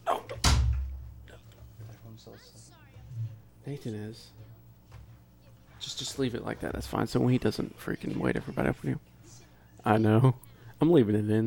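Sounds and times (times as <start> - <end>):
door pushed open and banging shut: 0.4 - 1.0
speech: 2.2 - 4.4, 5.9 - 9.1, 9.8 - 11.4.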